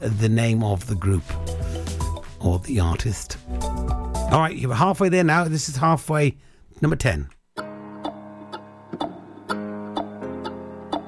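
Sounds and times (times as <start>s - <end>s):
speech: 0.0s - 1.6s, 2.4s - 3.6s, 4.3s - 7.4s
ticking clock: 7.3s - 11.0s.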